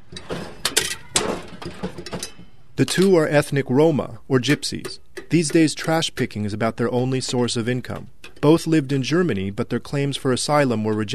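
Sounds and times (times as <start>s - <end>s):
sharp knocks and rattles from a scrapped washing machine: 0.0s - 3.4s, 4.4s - 8.8s
metallic clanks and scraping from a scrapped washing machine being pulled apart: 0.0s - 3.5s, 4.5s - 6.4s, 7.1s - 8.8s
speech: 2.8s - 11.1s.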